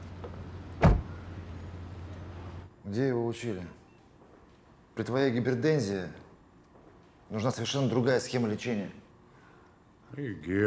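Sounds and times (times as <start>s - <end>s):
car door thud as people get out of a car: 0.8s - 1.2s
speech: 2.9s - 3.8s, 5.0s - 6.2s, 7.3s - 9.0s, 10.1s - 10.6s.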